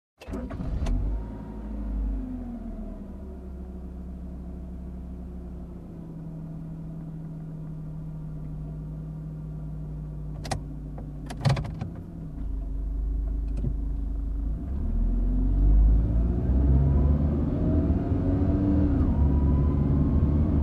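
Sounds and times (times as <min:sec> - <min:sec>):
calm car ride: 0:00.2 - 0:20.6.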